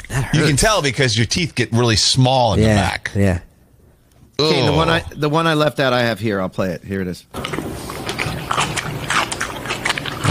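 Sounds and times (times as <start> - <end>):
speech: 0.1 - 3.5, 4.4 - 7.6
wet open-mouthed chewing with smacking: 7.3 - 10.2.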